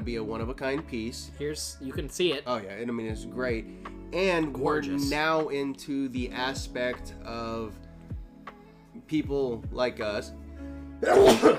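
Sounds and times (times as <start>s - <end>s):
speech: 0.0s - 7.8s, 9.1s - 10.4s, 11.0s - 11.5s
sneeze: 11.0s - 11.5s.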